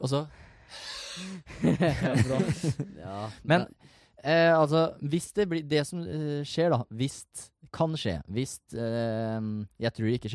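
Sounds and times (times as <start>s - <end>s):
speech: 0.0s - 10.3s
person exhaling: 0.4s - 1.4s
laughter: 1.5s - 3.2s.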